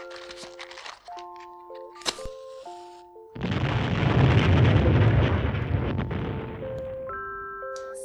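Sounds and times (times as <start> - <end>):
firecracker banger exploding under a Christmas tree: 3.4 - 7.7.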